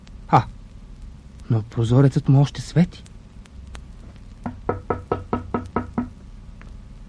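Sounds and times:
speech: 0.3 - 0.5, 1.5 - 3.1
knocking on the wooden door of a goldsmith's house at night: 4.4 - 6.1.

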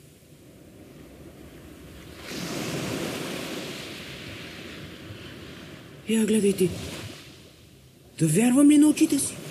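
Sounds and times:
sea surf waves breaking on shore: 0.0 - 9.5
wind: 0.0 - 9.5
speech: 6.1 - 7.0, 8.2 - 9.4.

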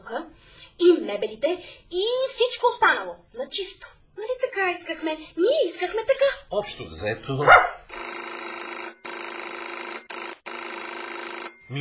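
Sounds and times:
speech: 0.1 - 8.1
telephone ringing with bright electronic trill: 7.9 - 11.7.

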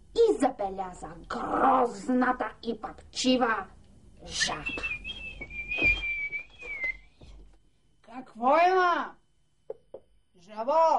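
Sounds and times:
speech: 0.4 - 5.0, 8.2 - 9.2, 10.4 - 10.9
young man whistling a tune with his mouth: 4.6 - 7.2.

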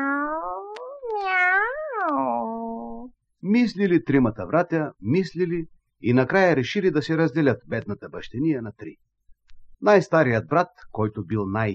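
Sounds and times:
cat meowing: 0.0 - 3.0
speech: 3.4 - 9.1, 9.8 - 11.7.

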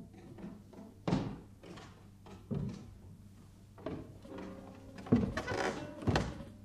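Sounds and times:
heavy footsteps climbing a wooden staircase: 1.0 - 3.0, 3.8 - 6.5.

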